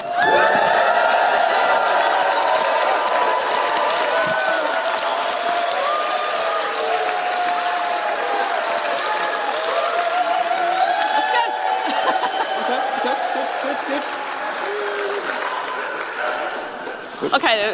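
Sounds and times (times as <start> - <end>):
large crowd cheering with whoops and shouts: 0.0 - 17.2
laughter: 9.2 - 17.5.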